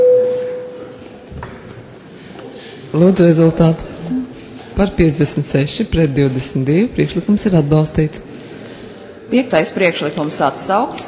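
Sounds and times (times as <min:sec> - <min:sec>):
parliamentary voting bell electronic tone: 0:00.0 - 0:00.8
speech: 0:03.0 - 0:03.9, 0:04.8 - 0:08.4, 0:09.3 - 0:11.0.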